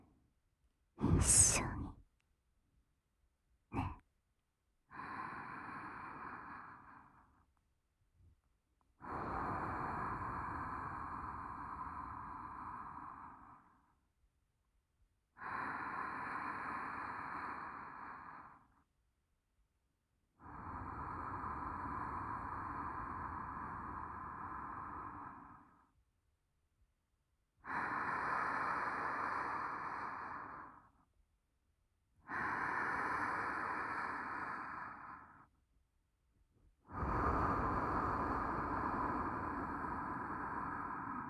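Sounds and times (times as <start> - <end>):
slow deep human breathing: 1.0 - 2.0, 4.9 - 7.5, 9.0 - 14.0, 15.4 - 18.9, 20.4 - 26.0, 27.6 - 31.1, 32.2 - 35.6, 36.7 - 41.2
speech: 1.2 - 1.7.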